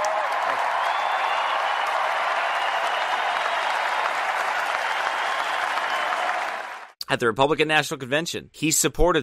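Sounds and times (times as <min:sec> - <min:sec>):
large convention crowd applauding: 0:00.0 - 0:07.0
speech: 0:07.1 - 0:09.2.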